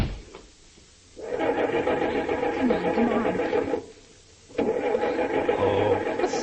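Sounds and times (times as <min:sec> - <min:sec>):
car engine turning over and roaring to life: 0:01.2 - 0:03.9, 0:04.5 - 0:06.4.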